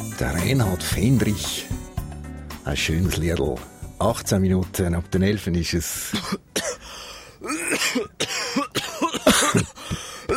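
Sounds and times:
speech: 0:00.2 - 0:01.8, 0:02.7 - 0:06.5, 0:07.8 - 0:08.9
person coughing in harsh chesty bursts: 0:06.1 - 0:06.8, 0:07.4 - 0:10.3.

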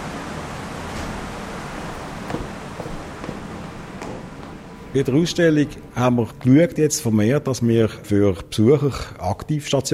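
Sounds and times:
steady broad rush of water at an undershot water wheel: 0:00.0 - 0:04.1
faint splashes and knocks from water wheel paddles: 0:02.1 - 0:04.7
speech: 0:05.0 - 0:09.9.

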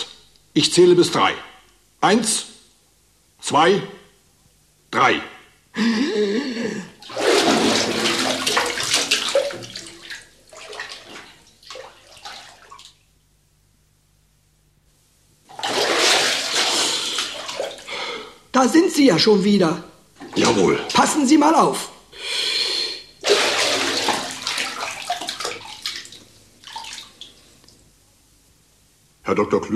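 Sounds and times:
speech: 0:00.6 - 0:02.5, 0:03.4 - 0:04.0, 0:04.9 - 0:08.2, 0:18.6 - 0:22.6, 0:29.3 - 0:29.7
water splashing and sloshing in a bathtub as a person dives under: 0:07.0 - 0:13.2, 0:15.5 - 0:18.3, 0:20.2 - 0:21.6, 0:23.2 - 0:27.8.

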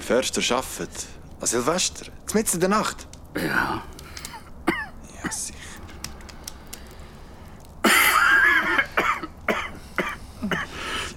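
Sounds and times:
speech: 0:00.1 - 0:03.9
faint clicks: 0:03.0 - 0:04.4, 0:05.6 - 0:07.8
man coughing: 0:03.4 - 0:05.6, 0:07.8 - 0:10.8.

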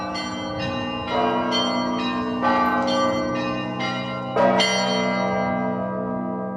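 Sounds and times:
Russian Orthodox church bells of a church in Kazan ringing in a peal: 0:00.0 - 0:06.5.

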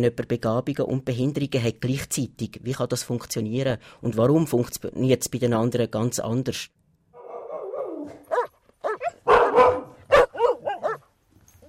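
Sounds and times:
speech: 0:00.0 - 0:06.8
Great Dane, half-wolf and small lap dog yipping and barking: 0:07.2 - 0:11.6.

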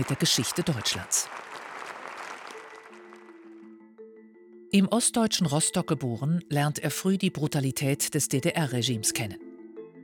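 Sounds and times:
speech: 0:00.0 - 0:01.5, 0:04.7 - 0:09.5
large crowd giving a standing ovation for a departing German Federal President: 0:00.0 - 0:03.7.

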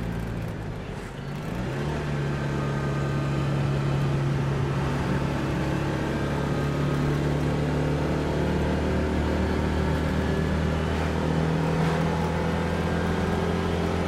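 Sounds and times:
small 2 PS car engine labouring up a steep hill in second gear: 0:00.0 - 0:14.0.

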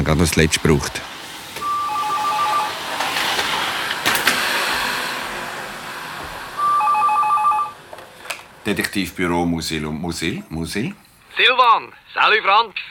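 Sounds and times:
faint room noise: 0:00.0 - 0:12.8
speech: 0:00.1 - 0:01.2, 0:08.7 - 0:12.8
telephone ringing with a warbling electronic trill: 0:01.6 - 0:03.2, 0:06.6 - 0:07.8.

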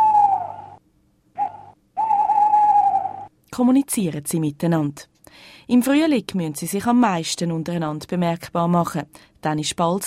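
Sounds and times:
owl hooting at night: 0:00.0 - 0:00.8, 0:01.4 - 0:03.3
speech: 0:03.6 - 0:10.0.

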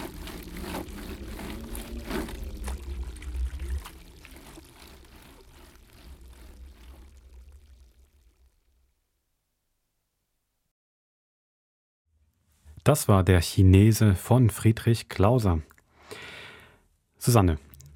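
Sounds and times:
water pouring and splashing into a tub while washing laundry: 0:00.0 - 0:09.0
speech: 0:12.8 - 0:15.8, 0:17.2 - 0:17.7.

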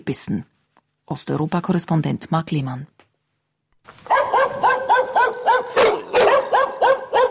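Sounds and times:
speech: 0:00.0 - 0:00.5, 0:01.1 - 0:03.0
stray dogs barking in sharp high yelps: 0:04.1 - 0:07.2.

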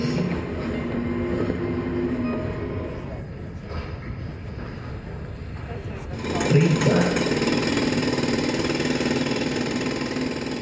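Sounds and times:
faint indistinct voices: 0:00.0 - 0:07.4
heavy mechanical roar of construction workers drilling a tunnel: 0:00.0 - 0:10.6.

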